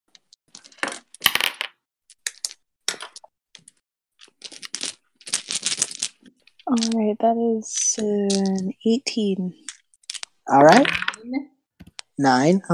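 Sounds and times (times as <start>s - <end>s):
dice clattering across a hard tabletop: 0.6s - 3.2s, 4.2s - 7.0s, 10.1s - 11.2s
speech: 6.7s - 9.6s, 10.5s - 11.5s, 12.2s - 12.7s.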